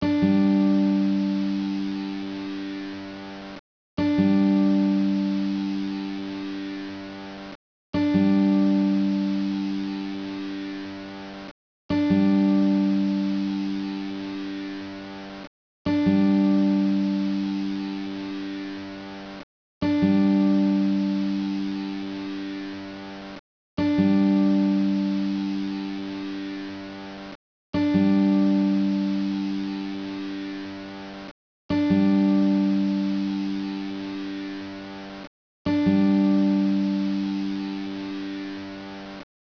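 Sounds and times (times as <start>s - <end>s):
guitar loop: 0.0s - 2.9s, 4.0s - 6.8s, 8.0s - 10.8s, 11.9s - 14.8s, 15.9s - 18.7s, 19.8s - 22.7s, 23.8s - 26.6s, 27.8s - 30.6s, 31.7s - 34.6s, 35.7s - 38.5s.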